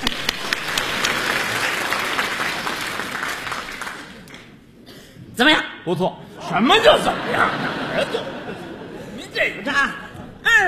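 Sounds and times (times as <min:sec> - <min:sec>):
audience applause at a live comedy stage show: 0:00.0 - 0:04.5
speech: 0:05.4 - 0:08.2
laughter: 0:06.3 - 0:10.4.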